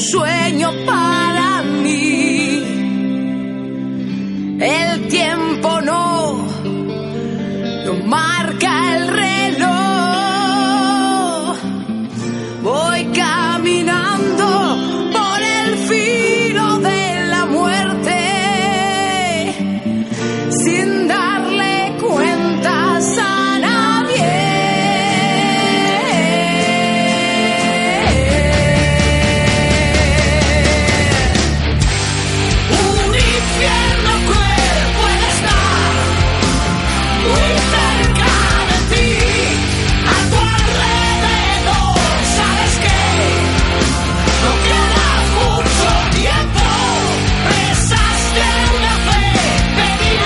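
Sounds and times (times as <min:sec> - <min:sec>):
speech: 0:00.0 - 0:01.0
strained vocals: 0:00.0 - 0:03.4, 0:04.6 - 0:50.2
dense guitars: 0:00.0 - 0:50.2
loud rock track by a band from Cádiz: 0:00.0 - 0:50.2
driving drums: 0:26.6 - 0:50.2.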